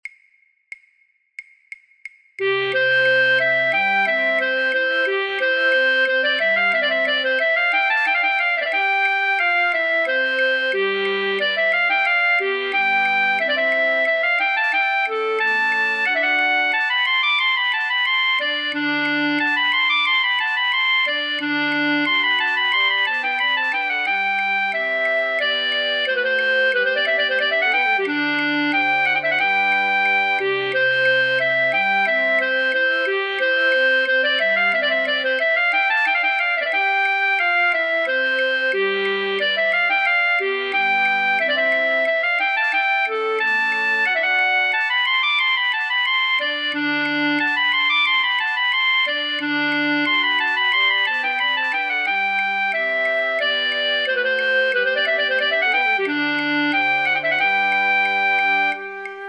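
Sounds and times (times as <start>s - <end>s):
flute choir playing a practice track: 2.4s - 59.2s.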